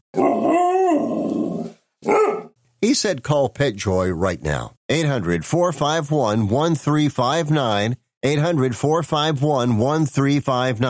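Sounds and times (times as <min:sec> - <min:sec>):
dog barking and howling: 0:00.1 - 0:02.6
speech: 0:02.9 - 0:10.8.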